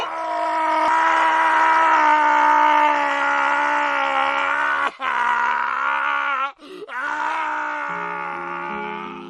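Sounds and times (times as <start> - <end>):
man screaming and groaning in agony: 0.0 - 9.2
man gasping for breath: 6.6 - 6.9.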